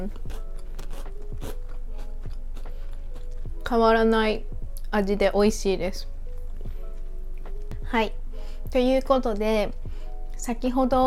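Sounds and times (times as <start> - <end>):
speech: 0.0 - 0.4, 3.7 - 6.1, 7.9 - 9.8, 10.4 - 11.0
low steady background: 0.0 - 11.0
biting and chewing a chocolate snack: 0.1 - 3.5.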